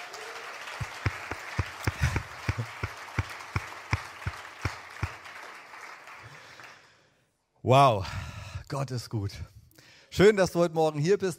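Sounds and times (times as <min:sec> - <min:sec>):
audience applauding: 0:00.0 - 0:06.9
speech: 0:07.7 - 0:09.6, 0:10.2 - 0:11.3.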